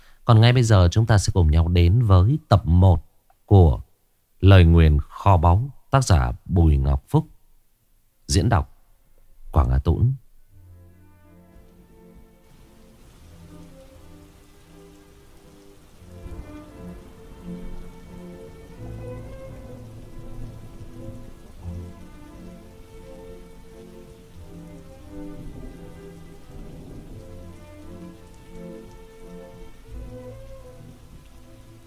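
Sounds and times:
speech: 0.3s - 3.8s, 4.4s - 7.3s, 8.3s - 8.7s, 9.5s - 10.2s
heavy jungle rain: 10.6s - 31.8s.

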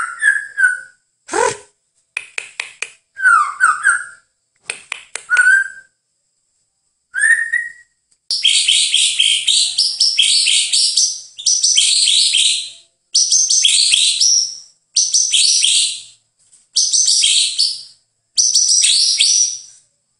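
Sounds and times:
bird song: 0.0s - 1.0s, 3.1s - 4.4s, 7.1s - 19.9s.

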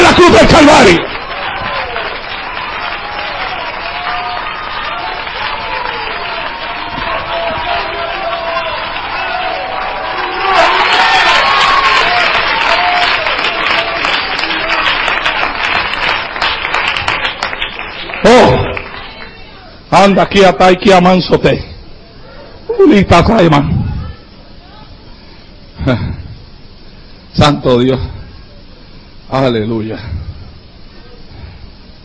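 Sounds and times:
church congregation clapping during a sermon: 0.0s - 19.7s
voices in a church congregation: 0.0s - 20.5s, 21.5s - 29.2s
speech: 0.6s - 1.1s, 20.1s - 21.7s, 22.8s - 23.7s, 25.8s - 26.2s, 27.4s - 28.2s, 29.3s - 30.2s.

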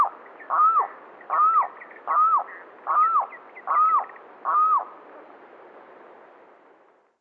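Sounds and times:
Limpkin Aramus guarauna wailing calls: 0.0s - 4.9s.

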